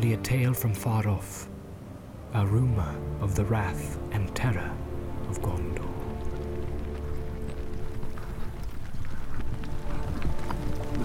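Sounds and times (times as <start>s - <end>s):
speech: 0.0s - 1.6s, 2.3s - 5.9s
horses' hooves clopping as riders ride back toward a city gate: 5.2s - 11.0s.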